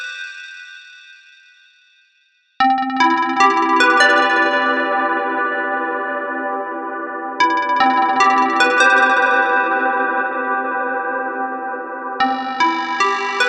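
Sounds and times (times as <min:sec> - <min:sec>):
FM synth pluck: 0:02.6 - 0:13.3.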